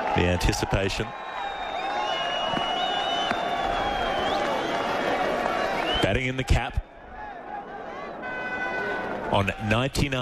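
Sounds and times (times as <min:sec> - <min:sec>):
large crowd at a cricket ground clapping and cheering: 0:00.0 - 0:10.2
speech: 0:00.2 - 0:01.5, 0:06.0 - 0:06.9, 0:09.3 - 0:10.2
high whistles from cricket crowd: 0:01.1 - 0:05.0, 0:05.6 - 0:06.2.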